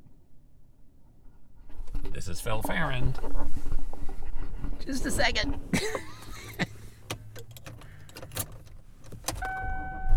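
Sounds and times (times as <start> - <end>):
car engine and road rumble while driving: 0.0 - 10.1
speech: 2.2 - 3.8, 4.8 - 6.7
sharp clicks and knocks: 7.0 - 9.6.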